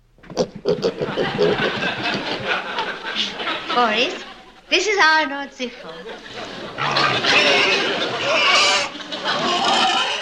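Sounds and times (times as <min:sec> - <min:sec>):
pig grunting and squealing: 0:00.4 - 0:01.7, 0:06.7 - 0:10.2
laughter: 0:00.8 - 0:05.0, 0:05.6 - 0:10.2
speech: 0:03.8 - 0:10.0.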